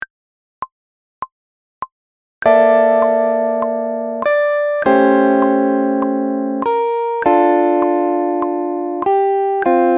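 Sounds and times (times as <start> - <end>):
blues chords: 2.4 - 9.9.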